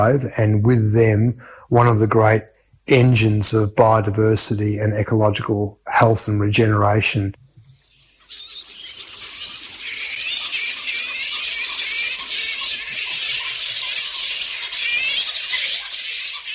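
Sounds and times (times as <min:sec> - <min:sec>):
speech: 0:00.0 - 0:07.4
flying fox colony chattering in the trees at night: 0:07.6 - 0:16.5.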